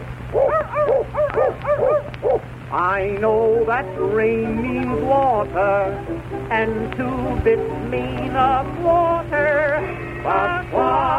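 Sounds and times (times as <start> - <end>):
steady low hum: 0.0 - 11.1
little dog barking in high whiny yips: 0.3 - 2.5
speech: 2.7 - 11.1.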